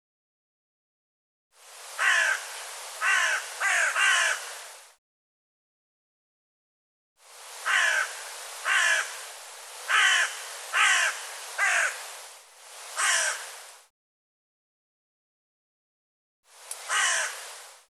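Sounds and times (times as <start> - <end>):
bird rasping caws: 2.0 - 4.7, 7.6 - 9.2, 9.9 - 12.1, 13.0 - 13.6, 16.8 - 17.5.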